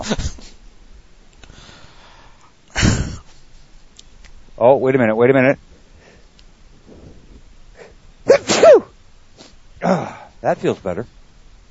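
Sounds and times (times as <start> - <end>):
speech: 0.0 - 0.4, 4.6 - 5.7, 9.8 - 11.2
sneeze into the microphone: 7.8 - 9.6.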